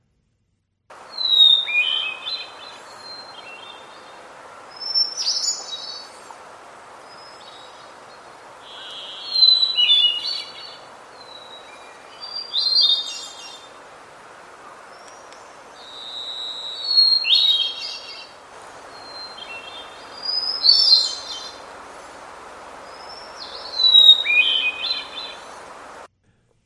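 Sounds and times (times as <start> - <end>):
hermit thrush singing: 0.9 - 26.1
soft hiss: 0.9 - 26.1.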